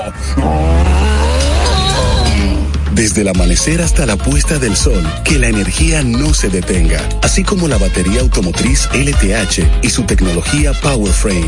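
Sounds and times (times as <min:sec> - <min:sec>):
speech: 0:00.0 - 0:00.7, 0:03.0 - 0:11.4
vehicle tires squealing as it skids: 0:00.0 - 0:04.7
traffic with deep engine rumble: 0:00.0 - 0:10.2.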